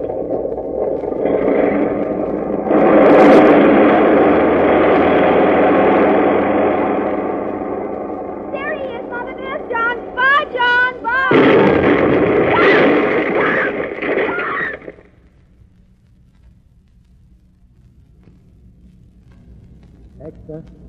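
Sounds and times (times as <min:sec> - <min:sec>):
brief rising whine: 0:00.0 - 0:15.1
bomb explosion on airplane: 0:00.0 - 0:15.4
faint low hum: 0:00.0 - 0:20.8
airplane engines roaring at takeoff: 0:02.6 - 0:11.4.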